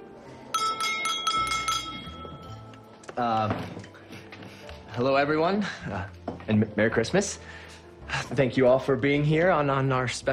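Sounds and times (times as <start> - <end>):
man tapping his drinking glass at a restaurant table: 0.6 - 2.9
speech: 3.2 - 3.8, 5.0 - 7.6, 8.2 - 10.3.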